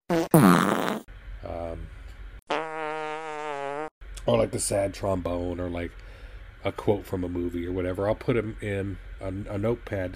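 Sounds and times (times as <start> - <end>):
fart sound effects: 0.1 - 1.1, 2.5 - 3.9
speech: 4.3 - 10.1.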